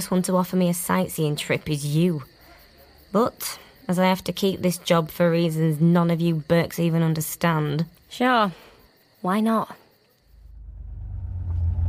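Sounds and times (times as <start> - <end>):
speech: 0.0 - 2.4, 3.1 - 9.8
Chevrolet Corvette C8 sports car engine rumbling: 10.4 - 11.8.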